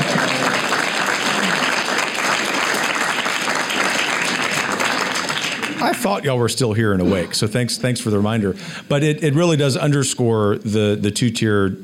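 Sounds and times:
live audience applause: 0:00.0 - 0:06.2
speech: 0:06.0 - 0:11.8.

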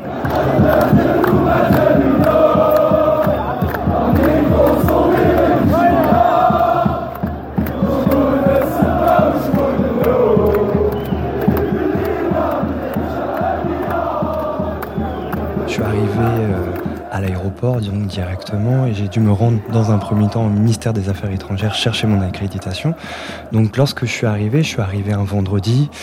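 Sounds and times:
pulsing beats: 0:00.0 - 0:17.4
large crowd of street protesters chanting in unison: 0:00.0 - 0:26.0
speech: 0:17.8 - 0:26.0.

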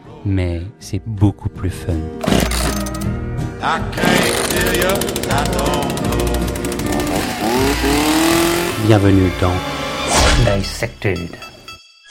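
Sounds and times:
speech: 0:00.2 - 0:11.5
chainsaw engine revving: 0:04.0 - 0:09.4.

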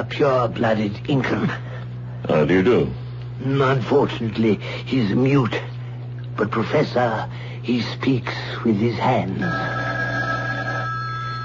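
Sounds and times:
speech: 0:00.0 - 0:05.7, 0:06.4 - 0:09.9
telephone ringing with electronic bell tone: 0:09.4 - 0:11.4.

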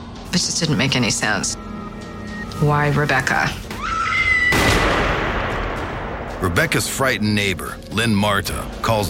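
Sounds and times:
speech: 0:00.4 - 0:01.7, 0:02.6 - 0:03.6, 0:06.4 - 0:09.0
single gunshot on North Sweetser Avenue: 0:04.5 - 0:06.3.

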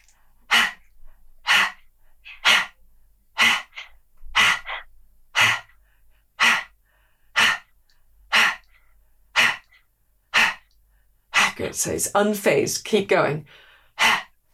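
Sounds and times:
rapid forceful breath of fire breathing: 0:00.0 - 0:11.8, 0:13.4 - 0:14.4
speech: 0:11.6 - 0:13.6.

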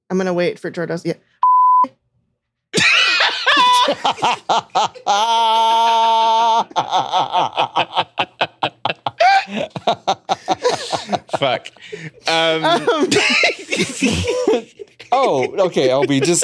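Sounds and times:
speech: 0:00.1 - 0:02.0, 0:03.9 - 0:08.1, 0:11.3 - 0:16.4
censor bleep: 0:01.4 - 0:01.9
loud laughter: 0:02.8 - 0:16.4.

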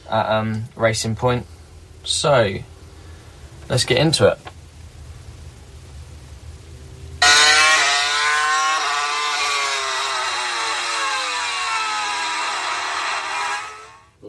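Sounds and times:
speech: 0:00.1 - 0:02.7, 0:03.7 - 0:04.5
Formula One car engine screaming at high revs: 0:07.2 - 0:14.2.

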